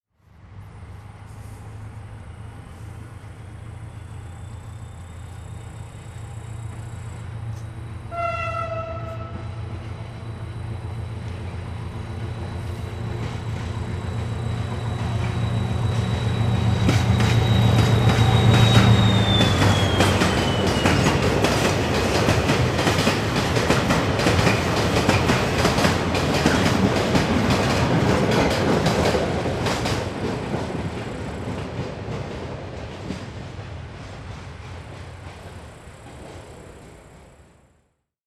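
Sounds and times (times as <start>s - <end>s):
coal train: 0.2s - 37.7s.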